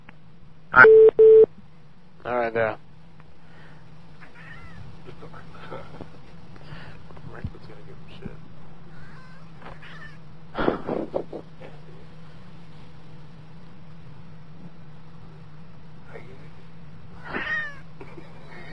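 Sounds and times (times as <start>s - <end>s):
steady low hum: 0.0s - 18.7s
speech: 0.8s - 1.0s, 2.4s - 2.9s
cat meowing: 17.2s - 17.8s.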